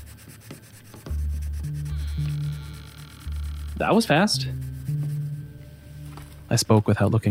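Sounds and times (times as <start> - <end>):
colored pencil rubbing across paper: 0.0 - 5.4
speech: 3.8 - 4.7, 6.5 - 7.2.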